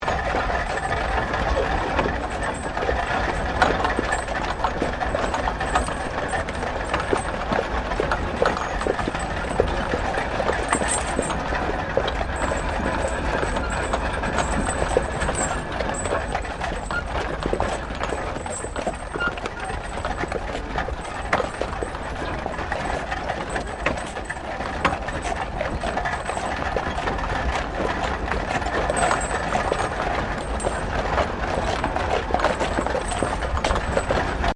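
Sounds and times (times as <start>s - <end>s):
four-horse horse-drawn wagon moving slowly: 0.0s - 34.5s.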